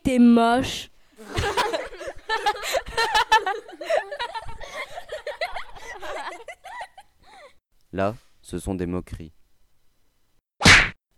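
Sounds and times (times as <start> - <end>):
speech: 0.1 - 1.4, 2.4 - 5.2, 8.0 - 9.4
laughter: 1.2 - 7.5
sharp slap: 10.6 - 11.0.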